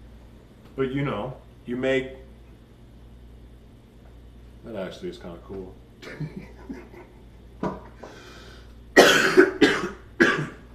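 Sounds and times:
speech: 0:00.8 - 0:02.3, 0:04.6 - 0:07.0
laughter: 0:06.0 - 0:07.5
person coughing hard: 0:09.0 - 0:10.7.

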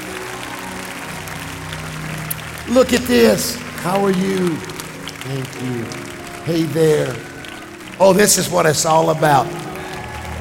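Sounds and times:
large crowd clapping: 0:00.0 - 0:10.3
speech: 0:02.7 - 0:07.3, 0:08.0 - 0:09.8.

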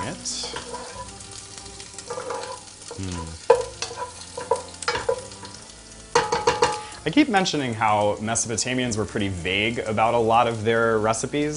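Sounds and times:
utensil clacking and scraping against a frying pan: 0:00.0 - 0:07.0
garlic sizzling in a frying pan: 0:00.0 - 0:11.5
speech: 0:03.0 - 0:03.4, 0:07.1 - 0:11.5.

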